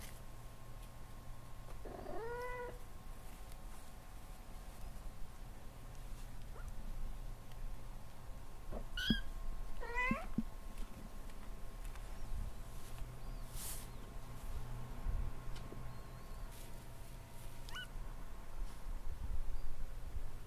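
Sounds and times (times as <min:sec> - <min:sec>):
steady low hum: 0:00.0 - 0:20.4
cat meowing: 0:01.9 - 0:02.8, 0:09.0 - 0:10.3, 0:17.7 - 0:17.9.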